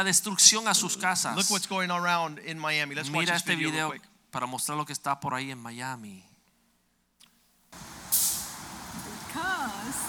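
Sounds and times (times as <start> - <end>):
speech: 0.0 - 6.3
sharp loud hiss of bus air brakes: 7.8 - 8.8
heavy public transit bus in Miami rumbling by: 7.8 - 10.0.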